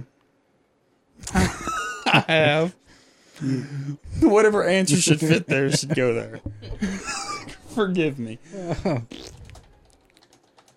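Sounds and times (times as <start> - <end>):
laughter: 1.2 - 2.7, 4.2 - 7.8, 8.5 - 9.1
speech: 2.3 - 2.8, 3.4 - 7.2, 7.8 - 9.3
typing on a computer keyboard: 9.4 - 10.7.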